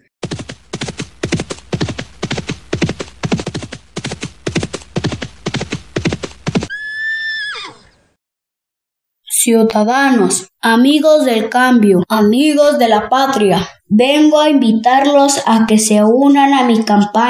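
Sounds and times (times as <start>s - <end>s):
horse hooves clip-clopping: 0.2s - 6.8s
horse whinnying: 6.7s - 8.2s
speech: 9.4s - 17.2s.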